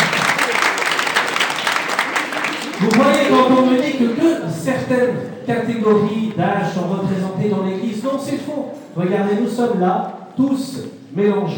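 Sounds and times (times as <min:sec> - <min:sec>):
audience applauding in a church: 0:00.0 - 0:04.4
speech: 0:02.8 - 0:11.5.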